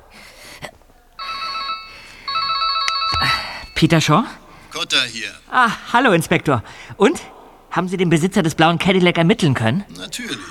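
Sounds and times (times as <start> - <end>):
mobile phone ringing with an electronic ringtone: 1.2 - 5.0
speech: 3.8 - 10.4.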